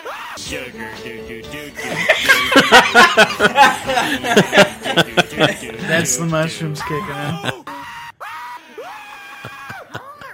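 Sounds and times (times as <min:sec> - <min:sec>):
speech: 0:00.4 - 0:07.6
laughter: 0:01.8 - 0:08.1, 0:09.0 - 0:10.3
man screaming loudly: 0:06.8 - 0:09.8.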